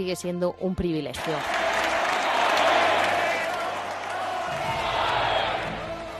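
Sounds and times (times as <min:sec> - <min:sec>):
speech: 0:00.0 - 0:01.7
sizable audience applause: 0:01.2 - 0:06.1
sizable audience cheering: 0:01.2 - 0:06.1.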